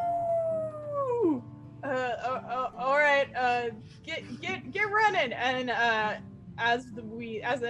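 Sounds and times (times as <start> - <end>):
wolf giving a long sliding howl: 0.0 - 1.5
speech: 3.2 - 7.6.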